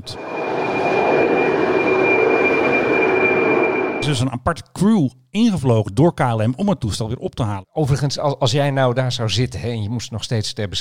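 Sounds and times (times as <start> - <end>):
speech: 0.0 - 0.4, 4.1 - 10.7
airliner jet roar taking off: 0.0 - 4.1
thin high jet engine whine: 0.0 - 4.1.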